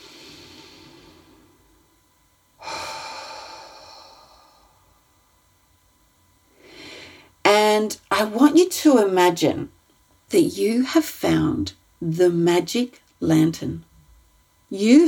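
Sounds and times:
slow deep breathing: 0.0 - 2.0, 2.6 - 5.5, 6.5 - 7.4
speech: 7.8 - 13.9, 14.7 - 15.0.

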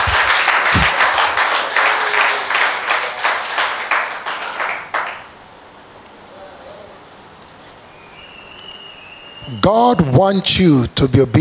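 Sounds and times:
crowd clapping and applauding loudly: 0.0 - 5.4
speech: 9.6 - 11.3.

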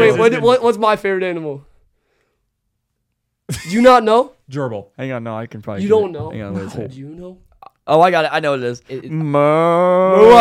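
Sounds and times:
speech: 0.0 - 1.7, 3.5 - 10.4
human voice imitating a cow mooing: 9.4 - 10.4.

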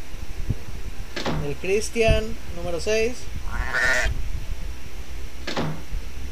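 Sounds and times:
low rumble: 0.0 - 6.3
speech: 1.4 - 3.8
sheep bleating: 3.5 - 4.1.

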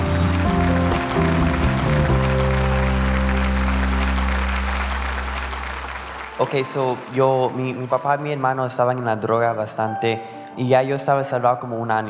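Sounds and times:
keyboard chords: 0.0 - 7.2, 9.8 - 11.2
crowd applause: 0.0 - 8.6
speech: 6.4 - 12.0.

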